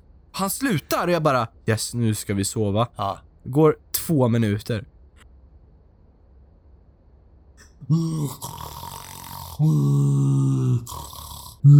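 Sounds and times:
speech: 0.4s - 4.9s, 7.9s - 8.8s, 9.6s - 11.7s
person imitating a man's loud snoring: 7.8s - 11.7s.

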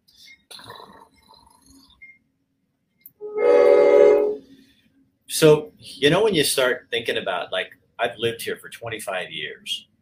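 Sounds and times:
train horn blaring: 3.2s - 4.5s
speech: 5.4s - 9.9s.

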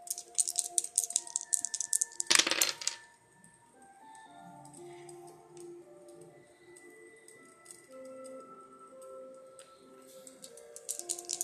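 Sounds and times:
dice rattling in a cup: 0.0s - 3.0s, 10.4s - 11.4s
soft tinkling music: 0.0s - 11.4s.

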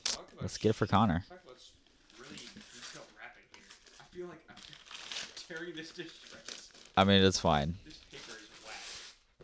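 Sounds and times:
casual conversation: 0.0s - 9.2s
speech: 0.4s - 1.8s, 5.5s - 8.0s
wrapping paper crinkling and rustling as a gift is unwrapped: 2.0s - 9.3s.

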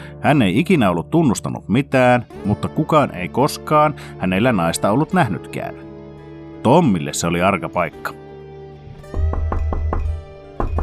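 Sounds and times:
speech: 0.2s - 5.8s, 6.6s - 8.2s
knocking on a door: 9.1s - 10.8s.

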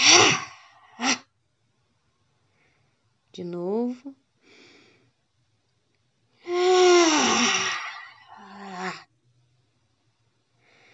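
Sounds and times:
speech: 3.4s - 4.2s
person exhaling aloud while rising from a bend: 6.4s - 9.0s.

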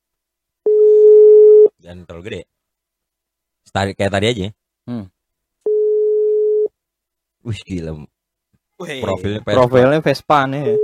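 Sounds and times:
telephone ringback tone while calling: 0.7s - 1.7s, 5.7s - 6.7s, 10.6s - 10.8s
speech: 1.9s - 2.6s, 3.6s - 5.1s, 7.4s - 8.2s, 8.8s - 10.8s.

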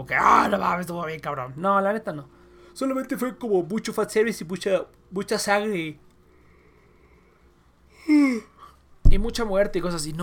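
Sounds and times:
speech: 0.0s - 6.1s, 8.0s - 8.5s, 9.2s - 10.2s
person yawning: 7.9s - 8.8s.

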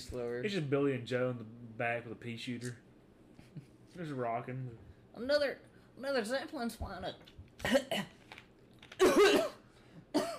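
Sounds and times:
speech: 0.0s - 2.9s, 3.6s - 8.2s
man coughing: 9.0s - 10.3s.

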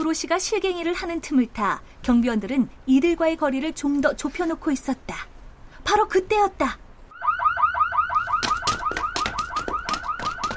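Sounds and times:
speech: 0.0s - 6.8s
car alarm: 7.1s - 10.5s.

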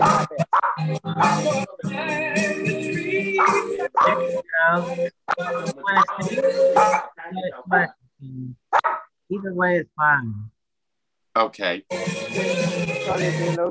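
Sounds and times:
dogs barking and yipping: 0.0s - 1.5s, 3.3s - 4.3s, 5.3s - 7.2s, 8.7s - 9.1s
dogs whining with drawn-out tones: 0.0s - 1.5s, 3.3s - 4.3s, 6.0s - 7.2s
speech: 0.8s - 2.6s, 4.0s - 10.5s, 11.4s - 13.6s.

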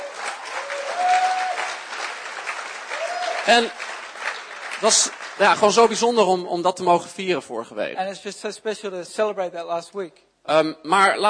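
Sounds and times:
crowd applause: 0.0s - 6.0s
speech: 3.4s - 3.9s, 4.8s - 11.2s.

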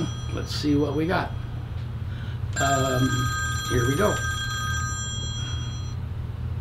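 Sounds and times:
telephone ringing with an incoming call: 0.0s - 6.1s
speech: 0.4s - 1.4s, 2.6s - 4.3s.

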